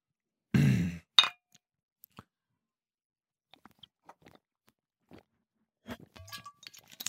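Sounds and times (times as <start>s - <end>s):
glasses clinking in a toast: 1.2s - 1.4s, 6.2s - 7.0s.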